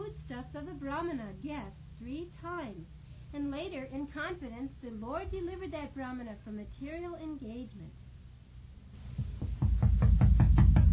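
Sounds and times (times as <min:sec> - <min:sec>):
speech: 0:00.5 - 0:08.0
knocking on a door: 0:09.2 - 0:10.9.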